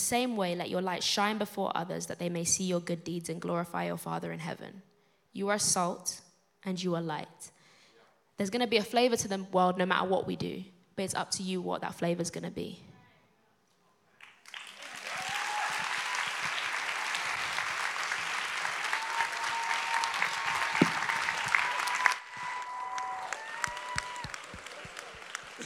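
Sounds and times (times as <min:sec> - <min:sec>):
speech: 0:00.0 - 0:07.6, 0:08.4 - 0:12.9
cheers and whoops from audience: 0:14.2 - 0:25.6
large audience applauding: 0:14.2 - 0:25.6.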